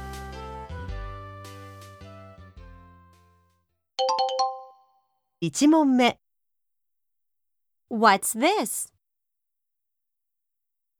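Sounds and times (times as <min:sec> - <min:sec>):
short electronic melody of sustained tones: 0:04.0 - 0:04.9
speech: 0:05.4 - 0:06.2, 0:07.9 - 0:08.9.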